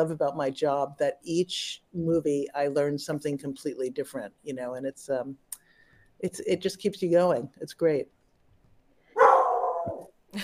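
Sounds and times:
speech: 0.0 - 5.5, 6.2 - 8.2
dog barking: 9.2 - 10.1.

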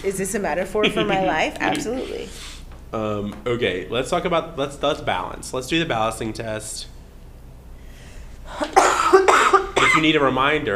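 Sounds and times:
speech: 0.0 - 7.0, 10.0 - 10.7
person coughing: 8.6 - 10.1.

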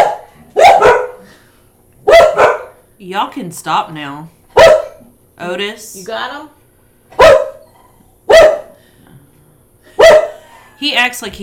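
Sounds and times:
dog barking: 0.0 - 1.2, 2.0 - 2.8, 4.5 - 5.0, 7.1 - 8.8, 10.0 - 10.4
speech: 3.0 - 4.4, 5.4 - 7.2, 10.8 - 11.4.

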